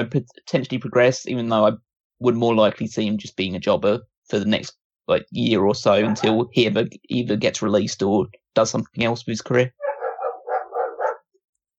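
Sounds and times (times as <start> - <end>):
speech: 0.0 - 9.8
dog barking: 6.0 - 6.4, 9.8 - 11.3.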